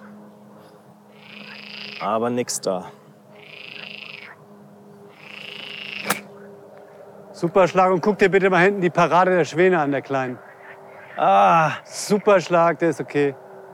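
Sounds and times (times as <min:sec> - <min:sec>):
frogs croaking on a golf course: 0:00.0 - 0:02.5, 0:03.1 - 0:07.3, 0:08.5 - 0:13.7
speech: 0:02.0 - 0:03.0, 0:07.4 - 0:10.5, 0:11.2 - 0:13.4
sharp click: 0:06.0 - 0:06.3.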